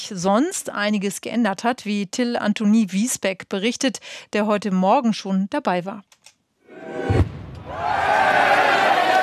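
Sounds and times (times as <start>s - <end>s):
speech: 0.1s - 6.2s, 6.8s - 8.6s
crowd shouting as they jump into a town stream: 6.7s - 9.2s
cannon shot at a fishing festival: 7.0s - 7.8s.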